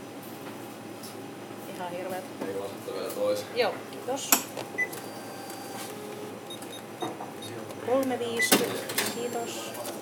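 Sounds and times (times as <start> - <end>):
low hum in a shop: 0.0 - 10.0
speech: 1.8 - 4.8, 8.0 - 9.9
cash register keys being pressed with electronic beeps: 4.8 - 7.6, 8.3 - 9.9.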